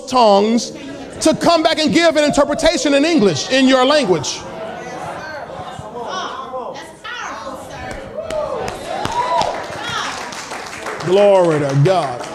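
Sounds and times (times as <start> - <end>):
murmur of people talking and calling out: 0.0 - 12.3
speech: 0.1 - 4.5, 11.1 - 12.3
laughter: 0.7 - 6.3
crowd clapping: 7.9 - 12.3.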